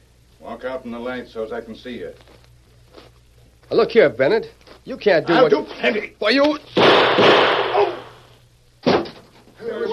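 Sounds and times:
speech: 0:00.5 - 0:02.4, 0:03.7 - 0:07.4
gunshots in a gunfight between two men: 0:06.8 - 0:08.2.

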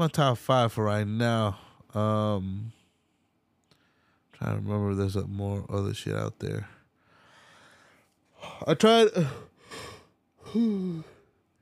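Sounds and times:
speech: 0:00.0 - 0:02.8, 0:04.4 - 0:06.8, 0:08.4 - 0:09.9, 0:10.5 - 0:11.1
yawn: 0:09.2 - 0:11.3.

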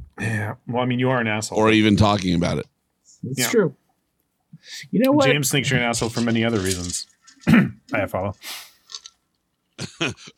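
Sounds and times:
speech: 0:00.2 - 0:03.8, 0:04.5 - 0:08.7, 0:09.8 - 0:10.3
soft coughs from a lingering COVID infection: 0:07.4 - 0:07.8.

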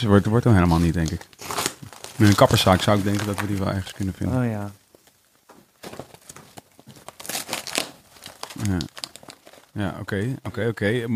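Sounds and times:
speech: 0:00.0 - 0:01.5, 0:02.2 - 0:04.8, 0:08.6 - 0:08.9, 0:09.8 - 0:11.1
cardboard packaging being torn open: 0:00.6 - 0:03.8, 0:05.8 - 0:09.7.

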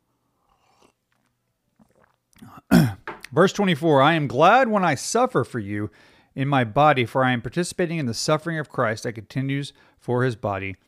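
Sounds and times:
person sipping from a cup and swallowing: 0:00.4 - 0:03.3
speech: 0:02.4 - 0:10.8.

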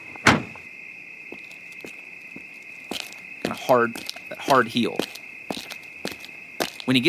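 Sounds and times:
car door clunk: 0:00.2 - 0:00.7
speech: 0:03.7 - 0:05.1, 0:06.9 - 0:07.0.

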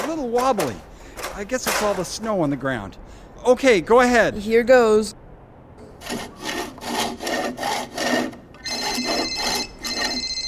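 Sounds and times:
hand saw cutting through a tree trunk: 0:00.0 - 0:01.9, 0:06.0 - 0:10.3
speech: 0:00.1 - 0:05.2, 0:06.1 - 0:06.3
cell phone ringing with a high electronic tone: 0:08.6 - 0:10.4.

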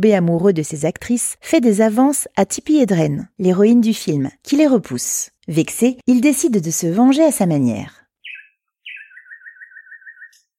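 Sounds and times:
speech: 0:00.0 - 0:08.0
bird calling: 0:08.2 - 0:10.5.

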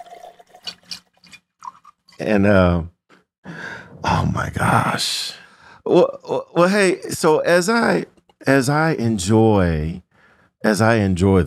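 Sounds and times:
whiskey pouring into a glass: 0:00.0 - 0:02.2
speech: 0:02.2 - 0:02.9, 0:04.2 - 0:10.0, 0:10.6 - 0:11.4.

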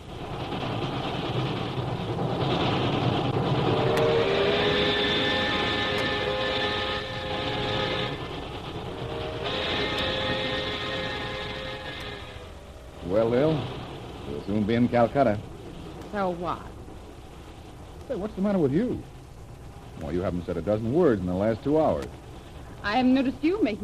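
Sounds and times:
droning hum: 0:00.0 - 0:23.8
train bound for Calcutta rolling along the rails: 0:00.0 - 0:23.8
speech: 0:13.2 - 0:13.7, 0:14.4 - 0:15.5, 0:16.1 - 0:16.7, 0:18.1 - 0:19.1, 0:20.0 - 0:22.2, 0:22.8 - 0:23.8
faint clicks from the track: 0:21.9 - 0:22.9.

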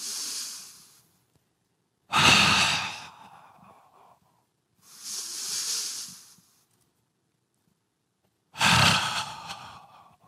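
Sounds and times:
deep breaths with loud breathy inhales and exhales: 0:00.0 - 0:01.2, 0:02.1 - 0:06.7, 0:08.6 - 0:10.2.

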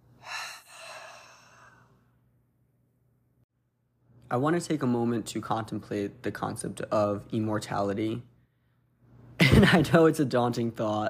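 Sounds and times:
deep breath in and out: 0:00.0 - 0:02.2
speech: 0:04.3 - 0:08.3, 0:09.6 - 0:11.0.

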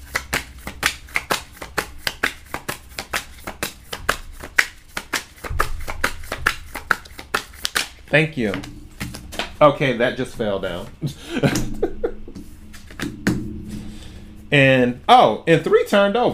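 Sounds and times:
tarot deck shuffled by hand: 0:00.0 - 0:09.6
speech: 0:08.1 - 0:08.8, 0:09.6 - 0:11.8, 0:14.5 - 0:16.3
laughter: 0:11.0 - 0:12.4.

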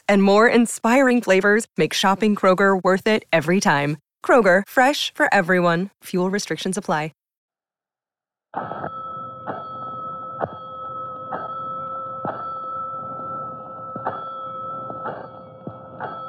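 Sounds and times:
speech: 0:00.1 - 0:07.2, 0:08.5 - 0:09.6, 0:10.4 - 0:10.6
fire station alarm bell clanging: 0:08.6 - 0:16.2.

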